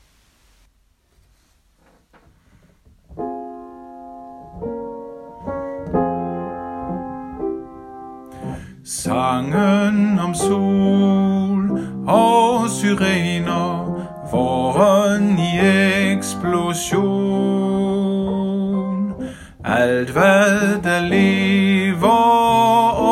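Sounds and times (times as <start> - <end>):
tenor singing melody: 8.3 - 23.0.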